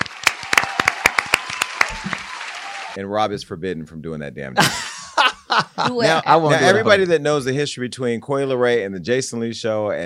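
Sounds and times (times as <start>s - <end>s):
one person clapping: 0.0s - 2.6s
speech: 3.0s - 4.9s, 5.6s - 10.0s
laughter: 4.6s - 7.1s.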